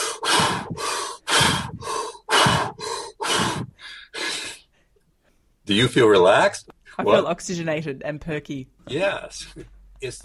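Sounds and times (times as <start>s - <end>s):
person breathing deeply and rapidly: 0.0s - 5.6s
speech: 5.7s - 10.2s.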